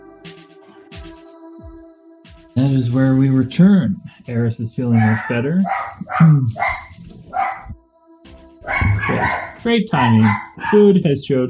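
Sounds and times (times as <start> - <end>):
speech: 2.6 - 6.8, 9.2 - 11.4
dogs barking excitedly: 5.0 - 7.8, 8.6 - 10.9.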